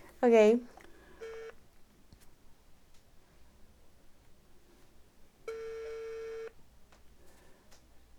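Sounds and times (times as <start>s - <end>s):
speech: 0.2s - 0.7s
telephone ringback tone on an outgoing call: 1.2s - 1.6s, 5.5s - 6.5s.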